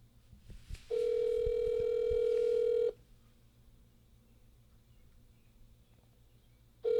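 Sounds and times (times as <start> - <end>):
outgoing phone ringback tone: 0.9 - 3.0.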